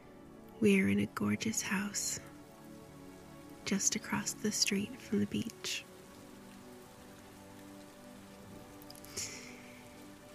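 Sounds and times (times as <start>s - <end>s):
heavy rain pouring: 0.2s - 10.3s
speech: 0.6s - 2.3s, 3.7s - 5.9s.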